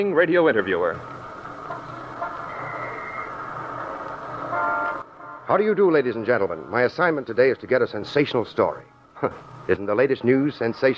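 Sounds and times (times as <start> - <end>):
speech: 0.0 - 1.9, 5.5 - 10.9
street-corner traffic engine rumble in New York City: 0.0 - 10.9
car horn toot: 1.7 - 3.3, 4.4 - 5.6.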